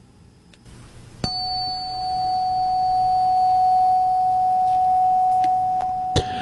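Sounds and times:
single struck pure ringing tone with faint higher overtone: 1.2 - 6.4.

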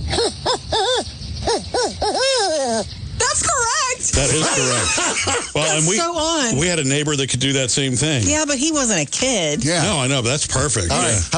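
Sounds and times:
boy imitating a barn owl call: 0.0 - 2.9
laughter: 4.2 - 6.0
speech: 4.2 - 11.3.

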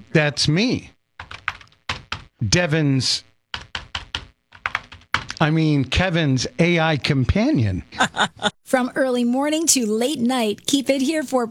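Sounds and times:
speech: 0.1 - 1.0, 2.4 - 3.3, 5.4 - 11.4
crisp keyboard typing: 1.2 - 2.4, 3.5 - 5.4
laughter: 7.9 - 8.6.

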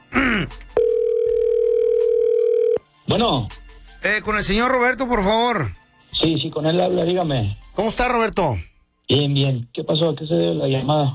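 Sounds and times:
speech: 0.4 - 0.6, 3.1 - 11.1
telephone dial tone while dialing a call: 0.8 - 2.8.

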